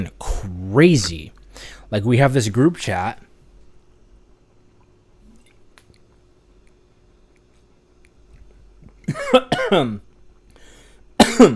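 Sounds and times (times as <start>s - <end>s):
speech: 0.0s - 3.3s, 9.1s - 10.1s
harsh coughing after choking on water: 9.0s - 10.0s, 11.2s - 11.5s.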